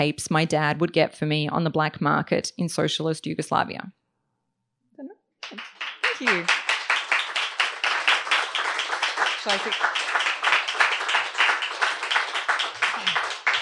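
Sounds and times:
speech: 0:00.0 - 0:04.0, 0:05.0 - 0:06.6, 0:09.4 - 0:10.1
audience applauding after a book reading: 0:05.4 - 0:13.5
person whooping: 0:12.8 - 0:13.4.

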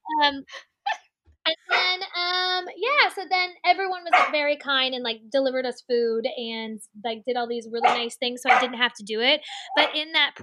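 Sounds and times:
speech: 0:00.2 - 0:00.7, 0:02.6 - 0:10.4
dog wearing a cone barking and yelping: 0:04.1 - 0:04.4, 0:07.8 - 0:08.8.

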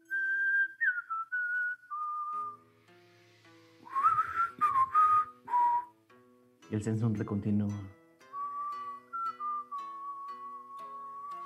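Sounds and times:
person whistling answering a mockingbird: 0:00.0 - 0:02.6, 0:03.8 - 0:06.0, 0:08.3 - 0:11.4
soft rhythmic plucked tones: 0:01.9 - 0:11.4
speech: 0:06.7 - 0:08.0.

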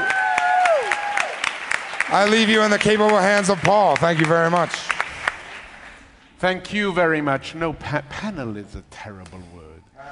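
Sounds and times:
audience applause: 0:00.0 - 0:06.0
speech: 0:02.1 - 0:04.9, 0:06.4 - 0:10.0.

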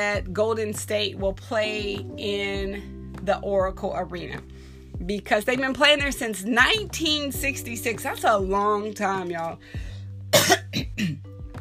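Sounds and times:
speech: 0:00.0 - 0:11.3
person coughing harshly: 0:10.3 - 0:11.2.

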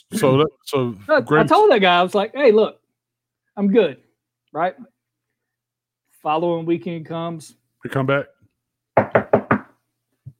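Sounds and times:
speech: 0:00.1 - 0:02.8, 0:03.6 - 0:04.9, 0:06.2 - 0:08.4
knocking on a door: 0:09.0 - 0:09.8.

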